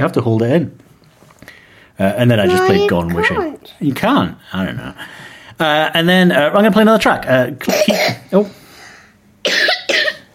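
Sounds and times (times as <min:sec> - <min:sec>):
speech: 0:00.0 - 0:00.8, 0:02.0 - 0:08.6
child coughing: 0:02.5 - 0:03.5, 0:07.6 - 0:08.3, 0:09.4 - 0:10.3.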